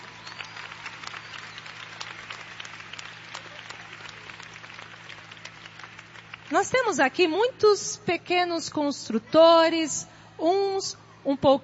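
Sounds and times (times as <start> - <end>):
congregation applauding: 0.0 - 7.2
faint low hum: 0.0 - 11.6
speech: 6.5 - 11.6.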